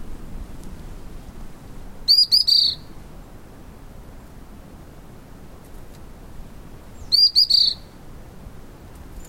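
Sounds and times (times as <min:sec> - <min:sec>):
low quiet hiss: 0:00.0 - 0:09.2
White-browed fulvetta song: 0:02.1 - 0:02.9, 0:07.0 - 0:07.9.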